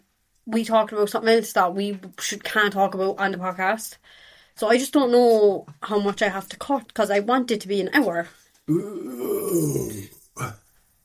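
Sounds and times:
speech: 0.5 - 10.6
person burping: 8.7 - 10.7.

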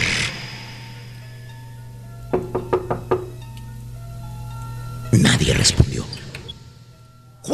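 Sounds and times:
low steady hum: 0.3 - 7.5
quick sharp knocks on a bathroom door of a corner shop: 2.3 - 3.4.

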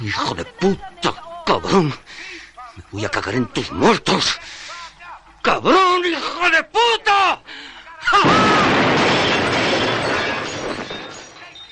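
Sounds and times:
speech: 0.0 - 2.3, 2.9 - 4.6, 5.4 - 9.0
package bomb exploding inside a hotel room: 8.2 - 11.2
debris roaring: 8.2 - 11.6
glass shattering: 8.2 - 11.7.

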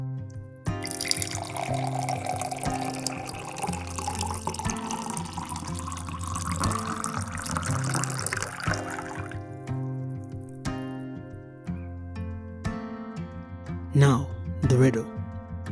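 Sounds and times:
soft music: 0.0 - 15.6
water poured into a glass held in a hand: 0.7 - 11.0.

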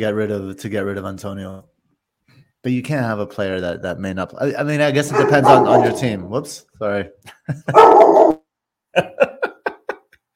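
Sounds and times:
speech: 0.0 - 1.7, 2.6 - 8.4, 9.0 - 9.3
dog barking: 5.1 - 6.3, 7.7 - 8.4
laughter: 7.2 - 10.2.

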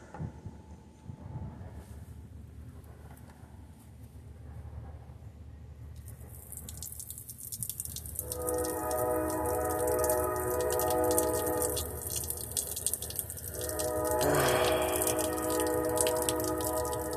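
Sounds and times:
train horn blowing in the early morning: 8.2 - 17.1.

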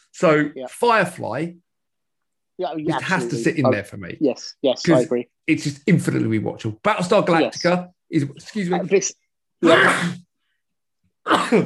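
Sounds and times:
speech: 0.2 - 1.6, 2.6 - 10.2, 11.2 - 11.6
person sneezing: 9.6 - 10.3.

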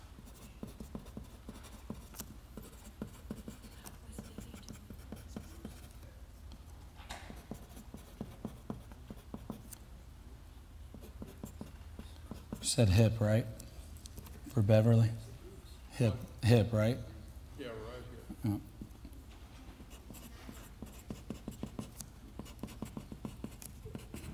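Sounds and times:
pencil or pen scratching on paper: 0.2 - 6.0, 7.3 - 9.8, 10.9 - 13.6, 19.8 - 24.3
speech: 12.7 - 13.6, 14.6 - 15.2, 16.0 - 17.1.

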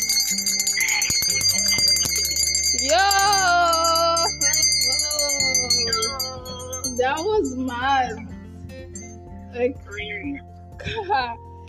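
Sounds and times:
bell ringing with bright shimmering tones: 0.0 - 9.3
speech: 7.0 - 8.3, 9.5 - 11.4.

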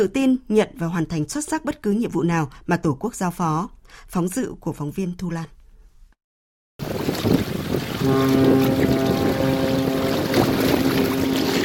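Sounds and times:
speech: 0.0 - 5.6, 8.0 - 9.7
gusty outdoor wind: 6.8 - 11.6
Vietnamese Navy submarine horn blast saluting the naval port while docking: 7.9 - 11.6.

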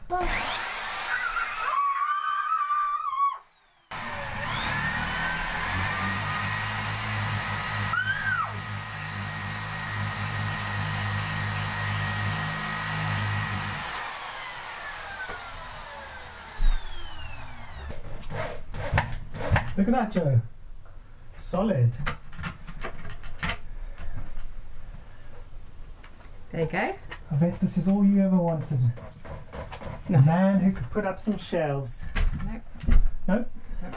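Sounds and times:
speech: 0.1 - 0.6, 19.8 - 20.5, 21.5 - 22.1, 26.6 - 29.2, 30.1 - 33.5
power drill drilling a hole in a wall: 0.1 - 19.6.

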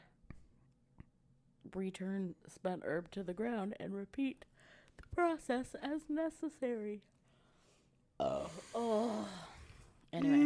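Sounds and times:
speech: 1.7 - 7.1, 8.2 - 9.5, 10.1 - 10.4
person yawning: 8.2 - 9.6, 10.2 - 10.4.

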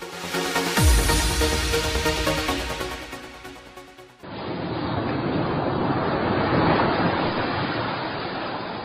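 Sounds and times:
musical jingle: 0.1 - 4.2
ocean waves breaking on sandy shore of a beach: 4.2 - 8.8.

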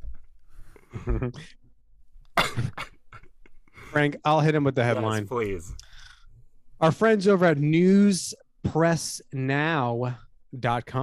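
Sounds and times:
speech: 1.0 - 1.6, 4.0 - 5.8, 6.8 - 11.0
loud throaty cough: 2.4 - 3.4.

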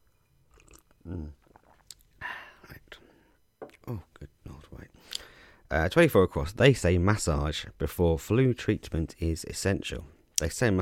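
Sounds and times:
small lip and swallow sounds: 0.5 - 2.1
person sipping a drink from a cup: 0.5 - 2.6
brief low voiced hum: 0.6 - 5.0
speech: 5.7 - 10.8.

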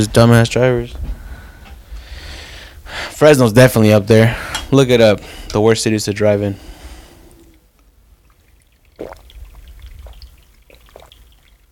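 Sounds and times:
speech: 0.0 - 1.0, 3.2 - 6.7
small splashy water drips: 7.3 - 11.7
water pouring into a glass for a drink: 8.2 - 11.7.

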